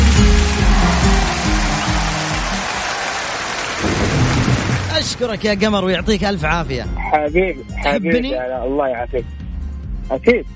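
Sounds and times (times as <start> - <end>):
heavy rain: 0.0 - 6.1
deep rolling thunder: 3.7 - 6.2
speech: 5.0 - 9.4, 10.1 - 10.5.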